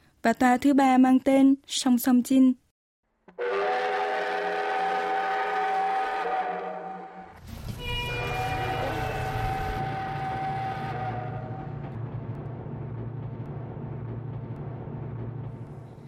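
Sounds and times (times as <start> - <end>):
speech: 0.2 - 2.6
tourist train whistle blasts: 3.3 - 11.8
slow-moving tourist train rumbling and chugging: 3.3 - 16.0.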